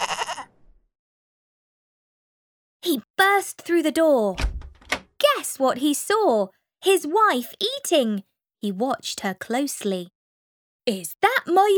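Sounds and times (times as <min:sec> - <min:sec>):
goat bleating: 0:00.0 - 0:00.6
speech: 0:02.8 - 0:04.5, 0:05.4 - 0:10.2, 0:10.9 - 0:11.7.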